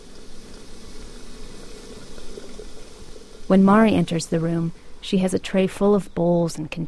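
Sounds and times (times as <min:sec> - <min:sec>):
kettle simmering on a sunken hearth: 0:00.0 - 0:05.5
speech: 0:03.5 - 0:06.8.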